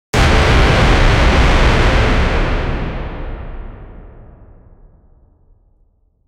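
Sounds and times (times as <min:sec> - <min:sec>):
massive cinematic war horn: 0:00.2 - 0:04.6.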